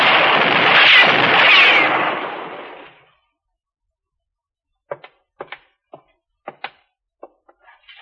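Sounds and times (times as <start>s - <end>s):
gunshots: 0.0s - 3.1s.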